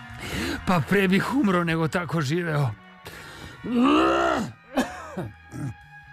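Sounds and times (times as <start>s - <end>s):
speech: 0.6s - 2.8s, 3.6s - 4.6s, 5.2s - 5.8s
man groaning: 3.6s - 5.8s
man coughing: 4.3s - 5.8s.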